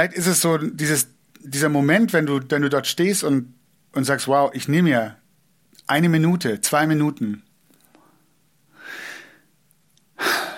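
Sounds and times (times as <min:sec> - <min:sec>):
speech: 0:00.0 - 0:07.5
person exhaling deeply: 0:08.8 - 0:09.5, 0:10.2 - 0:10.5.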